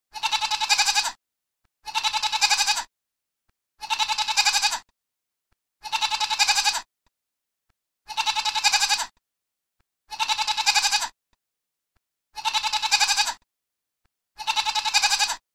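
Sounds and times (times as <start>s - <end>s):
goat bleating: 0.1s - 1.2s, 1.8s - 2.9s, 3.8s - 4.9s, 5.8s - 6.9s, 8.0s - 9.2s, 10.1s - 11.2s, 12.3s - 13.4s, 14.4s - 15.4s.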